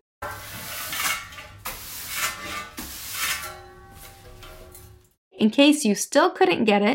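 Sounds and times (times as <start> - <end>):
broom sweeping across a floor: 0.2 - 5.1
faint metallic rattles from a metal dustpan: 0.2 - 5.1
speech: 5.4 - 6.9.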